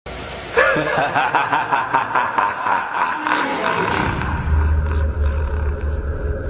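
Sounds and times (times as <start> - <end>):
evil laugh: 0.5 - 6.2.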